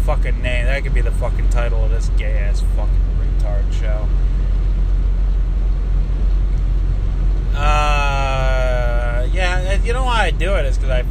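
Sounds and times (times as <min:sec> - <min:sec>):
truck cabin rumble on the road: 0:00.0 - 0:11.1
speech: 0:00.1 - 0:04.4, 0:07.6 - 0:08.2, 0:09.2 - 0:11.1.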